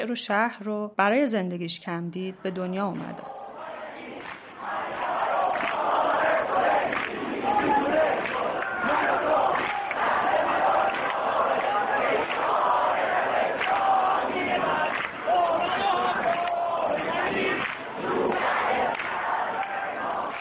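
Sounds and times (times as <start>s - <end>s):
speech: 0.0s - 3.4s
large crowd of students chanting in unison: 2.4s - 20.3s.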